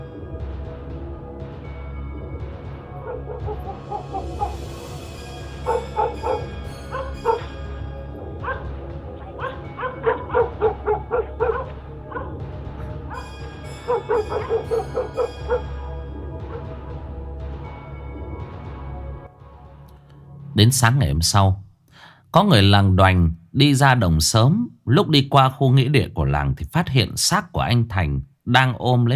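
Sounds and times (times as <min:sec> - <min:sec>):
dogs barking near a village graveyard at night: 0:02.7 - 0:16.9
dogs giving higher whining yips: 0:03.0 - 0:04.8, 0:05.5 - 0:07.8, 0:08.4 - 0:15.8
speech: 0:03.2 - 0:04.8, 0:05.6 - 0:06.5, 0:20.6 - 0:21.7, 0:22.3 - 0:29.1.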